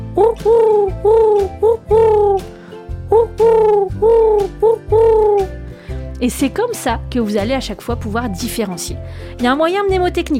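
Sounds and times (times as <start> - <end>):
pigeon cooing in five-beat phrases: 0.0 - 2.5, 3.1 - 5.6
speech: 0.4 - 1.8, 6.2 - 10.3.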